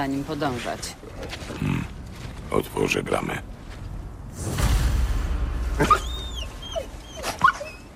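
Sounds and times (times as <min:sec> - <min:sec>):
speech: 0:00.0 - 0:01.6, 0:02.5 - 0:03.6, 0:04.4 - 0:04.7, 0:05.8 - 0:06.1
wolves whining and yipping: 0:05.8 - 0:07.9.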